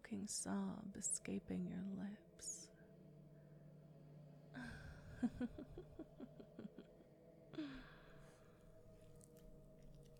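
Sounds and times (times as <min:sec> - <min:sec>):
speech: 0:00.1 - 0:02.8, 0:04.6 - 0:06.6, 0:07.5 - 0:08.0
soft breathy giggle: 0:04.9 - 0:07.1.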